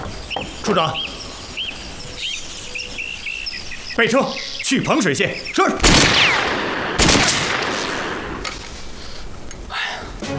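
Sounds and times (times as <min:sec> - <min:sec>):
steady hiss: 0:00.0 - 0:10.3
speech: 0:00.7 - 0:01.2, 0:04.0 - 0:06.7
gunshots: 0:05.8 - 0:08.6.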